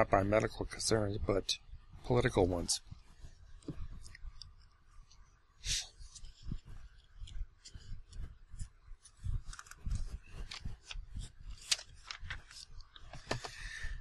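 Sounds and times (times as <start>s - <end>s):
speech: 0.0s - 2.9s, 5.6s - 5.9s
thin paper pages turning: 6.0s - 13.5s.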